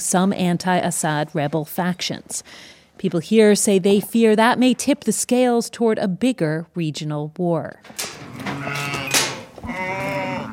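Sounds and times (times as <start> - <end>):
speech: 0.1 - 9.0
sheep bleating: 8.2 - 10.5.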